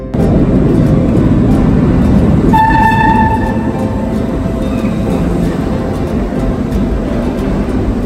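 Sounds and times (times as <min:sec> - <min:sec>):
subway train rumbling through a station: 0:00.0 - 0:08.0
two-tone horn or whistle: 0:02.5 - 0:05.3.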